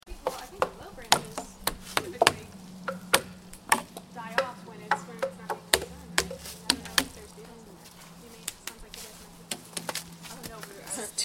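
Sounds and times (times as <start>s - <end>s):
tree ambience: 0.0s - 11.2s.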